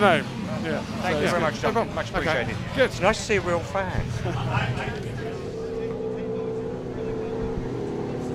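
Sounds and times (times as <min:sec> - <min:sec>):
speech: 0:00.0 - 0:05.1
vintage car engine idling: 0:00.4 - 0:08.3.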